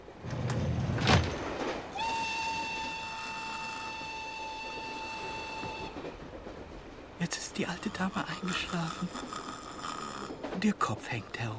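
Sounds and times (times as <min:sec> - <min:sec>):
train wheels rolling rumble: 0:00.0 - 0:11.5
long clear train whistle tone: 0:01.9 - 0:06.4
speech: 0:07.6 - 0:09.5, 0:10.6 - 0:11.5.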